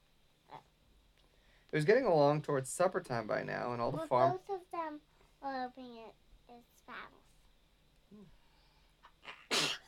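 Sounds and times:
speech: 1.7 - 7.3, 8.1 - 8.4
sneeze: 9.2 - 9.8.

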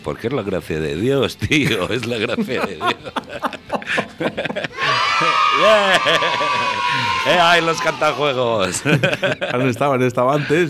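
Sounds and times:
speech: 0.0 - 10.6
laughter: 1.3 - 10.6
dense noisy crowd din: 1.7 - 9.6
children shouting and yelling: 4.5 - 8.9.

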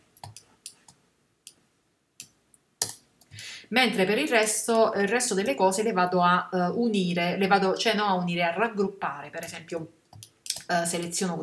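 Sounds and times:
computer mouse clicking: 0.2 - 1.6, 10.1 - 11.1
speech: 3.7 - 10.0, 10.7 - 11.4.

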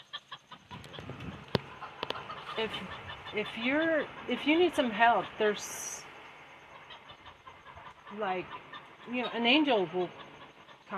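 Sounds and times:
chicken clucking: 0.0 - 5.9, 6.6 - 10.9
speech: 2.6 - 6.0, 8.2 - 10.2.

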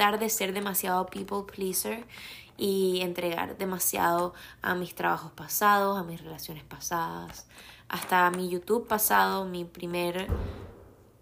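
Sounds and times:
speech: 0.0 - 10.7
heavy thud of something thrown or dropped inside a building: 10.3 - 11.2.

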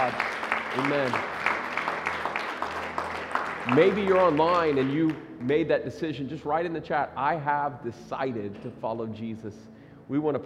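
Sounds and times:
speech: 0.0 - 1.5, 3.7 - 10.4
church audience applauding: 0.0 - 5.2.

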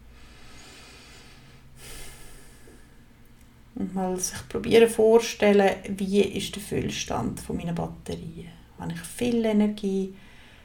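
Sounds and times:
deep audible breath close to the mic: 0.0 - 3.1, 10.2 - 10.6
speech: 3.8 - 10.3.

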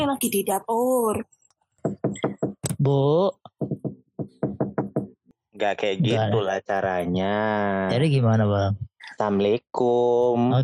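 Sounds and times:
speech: 0.0 - 3.8, 5.6 - 10.6
rapid sharp knocks on a wooden door: 1.8 - 2.7, 3.5 - 5.2.

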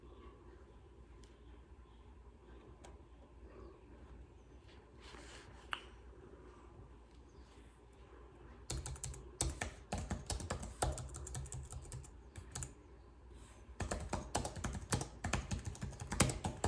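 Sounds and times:
typing on a battery-powered computer keyboard: 8.7 - 12.8, 13.8 - 16.6.

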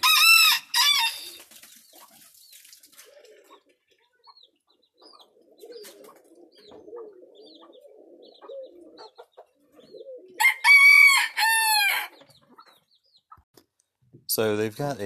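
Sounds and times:
rooster crowing: 0.0 - 1.3, 10.4 - 12.2
doves cooing in a small pen: 0.0 - 12.9
speech: 14.4 - 15.0.

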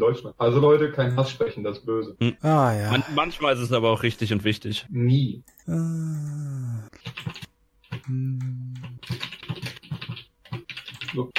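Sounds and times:
speech: 0.0 - 7.4, 8.0 - 9.3, 11.1 - 11.3
computer keyboard typing: 6.9 - 11.3.

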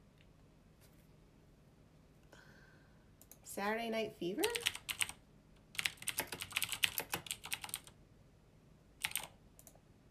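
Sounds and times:
speech: 3.6 - 4.8
loud typing on a computer keyboard: 4.4 - 8.0, 9.0 - 9.8.

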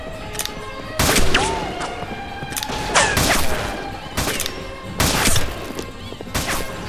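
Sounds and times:
constant rumbling background: 0.0 - 6.8
ricochet-like whines: 0.4 - 6.8
rapid gunfire exchange: 1.0 - 6.8.

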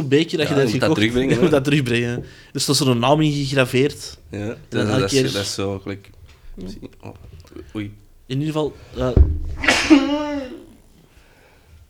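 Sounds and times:
speech: 0.0 - 10.6
laughter: 0.7 - 2.2, 9.6 - 10.8
single forceful sneeze: 9.6 - 10.8.

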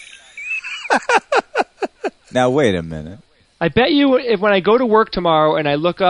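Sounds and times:
mice singing: 0.0 - 0.9
laughter: 0.2 - 2.6
speech: 2.3 - 6.0.

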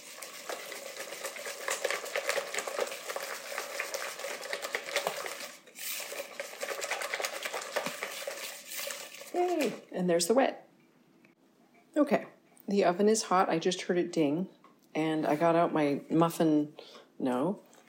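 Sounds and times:
whisk beating pumpkin batter in a bowl: 0.0 - 9.9
speech: 9.5 - 10.6, 12.0 - 17.8.

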